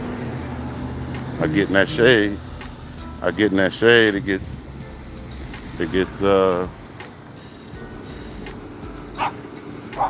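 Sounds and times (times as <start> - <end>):
speech: 1.4 - 2.5, 3.2 - 4.6, 5.8 - 6.8
dog barking outdoors: 9.1 - 10.0.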